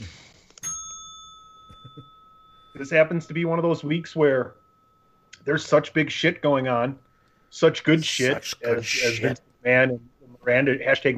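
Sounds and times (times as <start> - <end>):
bell ringing: 0.6 - 9.4
speech: 2.8 - 4.6, 5.5 - 11.1.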